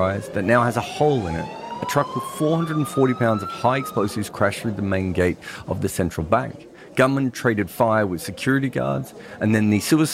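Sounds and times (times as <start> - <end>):
emergency siren wailing after a truck bombing at a central bank: 0.0 - 4.8
continuous talk: 0.0 - 10.1
speech: 0.0 - 10.1.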